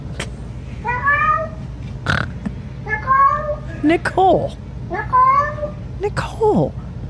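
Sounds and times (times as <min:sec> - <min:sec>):
low hum: 0:00.0 - 0:07.0
cat yowling: 0:00.8 - 0:01.6, 0:02.9 - 0:03.7, 0:04.9 - 0:05.8
speech: 0:03.8 - 0:05.1, 0:06.0 - 0:06.8.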